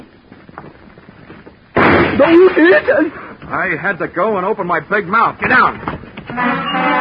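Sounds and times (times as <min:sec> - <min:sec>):
gunshot: 0:01.8 - 0:02.4
bullet crashing into a glass showcase: 0:01.8 - 0:02.9
speech: 0:02.1 - 0:06.9.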